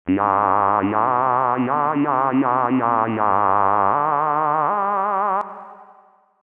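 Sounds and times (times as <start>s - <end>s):
person vocalizing: 0.1s - 4.9s.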